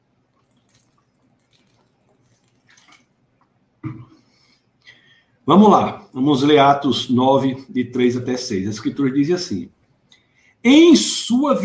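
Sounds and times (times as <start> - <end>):
person sipping water: 0.2 - 3.7
swallowing water: 0.3 - 4.1
gulp or clunk: 3.8 - 4.1
speech: 5.5 - 9.8, 10.6 - 11.6.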